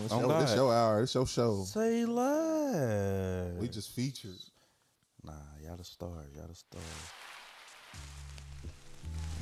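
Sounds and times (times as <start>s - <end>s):
speech: 0.0s - 4.6s, 5.2s - 7.3s
vinyl record crackle with pops and ticks: 6.4s - 9.4s.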